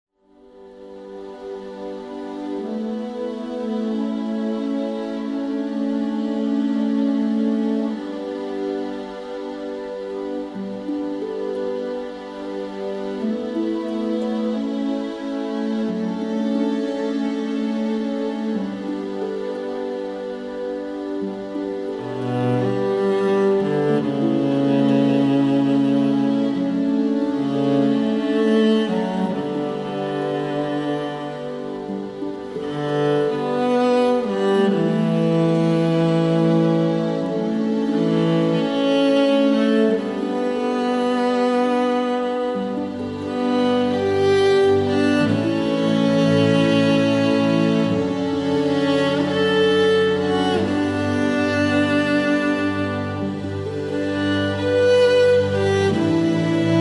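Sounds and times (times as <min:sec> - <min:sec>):
sad instrumental music: 0:00.2 - 0:56.7.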